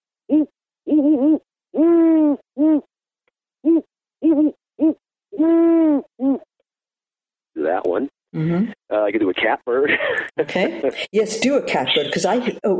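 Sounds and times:
speech: 0.3s - 1.4s, 8.5s - 12.7s
person imitating a great horned owl hooting: 0.3s - 2.9s, 3.6s - 6.4s.

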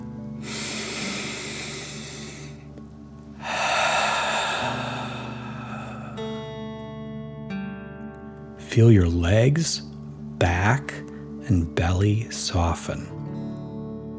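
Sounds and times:
quiet sustained tonal music: 0.0s - 14.1s
slow deep breath in and out during a children's bedtime relaxation exercise: 0.4s - 2.7s, 3.4s - 6.6s
speech: 8.8s - 9.9s, 10.6s - 13.2s.

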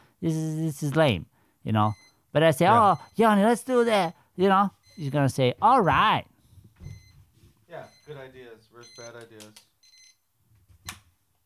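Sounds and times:
speech: 0.2s - 6.3s, 7.7s - 9.7s
brisket cooking timer alarm beeping: 1.8s - 5.9s, 6.8s - 7.2s, 7.8s - 9.2s, 9.8s - 10.2s.

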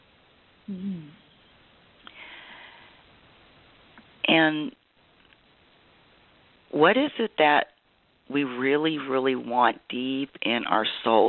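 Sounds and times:
soft hum-like vocal sound: 0.6s - 1.3s
speech: 0.7s - 1.2s, 4.4s - 4.8s, 6.8s - 7.7s, 8.3s - 11.2s
deep breathing during a guided relaxation exercise: 2.1s - 3.0s.

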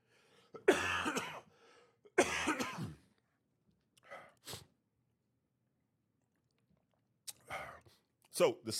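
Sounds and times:
loud harsh coughs: 0.6s - 1.5s, 2.1s - 3.1s.

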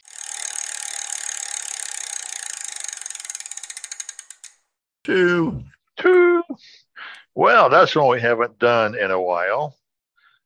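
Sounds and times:
prize wheel spinning against its ratchet: 0.0s - 4.7s
speech: 5.0s - 6.2s, 7.4s - 9.8s.

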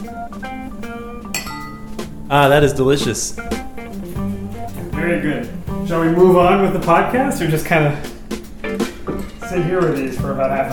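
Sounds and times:
glasses of mixed drinks clinking in a toast: 1.2s - 2.3s
speech: 2.0s - 3.6s, 5.0s - 8.1s, 9.5s - 10.7s.

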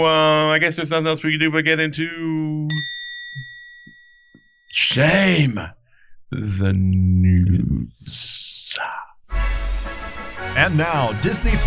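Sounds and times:
speech: 0.0s - 2.7s, 4.7s - 9.5s, 10.5s - 11.6s
single bell ringing: 2.7s - 4.6s.

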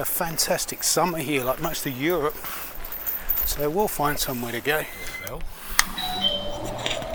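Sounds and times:
speech: 0.0s - 2.7s, 3.5s - 6.0s
indistinct voices: 0.0s - 7.1s
bright metallic shop door chime ringing: 4.2s - 7.1s.

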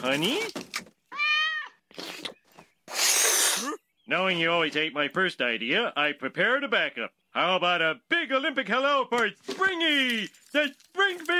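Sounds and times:
speech: 0.0s - 0.6s, 4.1s - 11.3s
cat meowing: 1.1s - 1.8s.

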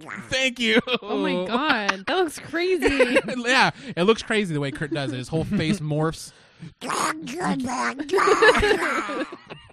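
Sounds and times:
speech: 0.0s - 9.6s
laughter: 0.6s - 6.1s, 7.4s - 9.7s
person imitating a raspy quacking duck voice: 6.8s - 8.6s.

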